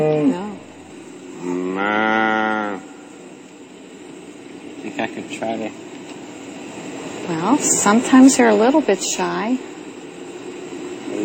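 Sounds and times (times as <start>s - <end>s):
cow mooing among a group of cows: 1.4s - 3.1s
speech: 5.1s - 5.9s, 7.3s - 9.7s.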